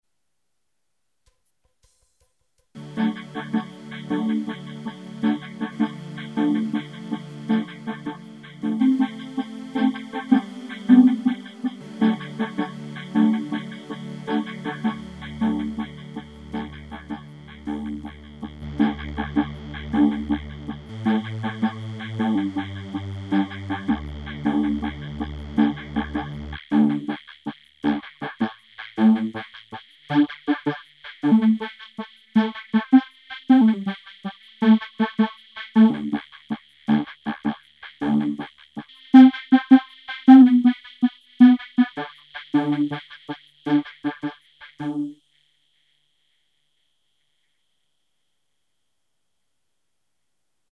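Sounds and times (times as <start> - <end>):
synthesizer chords: 2.8 - 27.2, 27.8 - 29.4, 30.1 - 31.7, 32.4 - 34.0, 34.6 - 36.2, 36.9 - 38.5, 39.2 - 43.0, 43.7 - 45.1
vocoder with drum sample input: 2.8 - 43.0.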